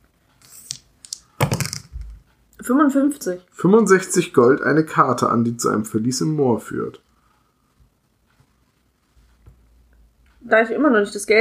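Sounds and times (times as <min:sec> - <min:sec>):
hundred-sided die clattering across a hard surface: 0:01.1 - 0:02.2
speech: 0:02.7 - 0:07.0, 0:10.5 - 0:11.3.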